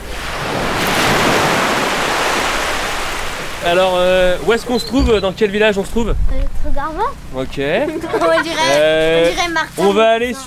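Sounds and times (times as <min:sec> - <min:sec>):
sea waves washing onto a shore at falling tide: 0:00.0 - 0:05.0
speech: 0:03.6 - 0:10.4
laughter: 0:07.7 - 0:09.4.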